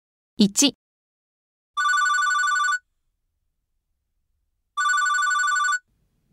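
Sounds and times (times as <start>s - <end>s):
speech: 0.4s - 0.8s
telephone ringing with electronic trill at a pizza shop: 1.8s - 2.9s, 4.8s - 5.9s.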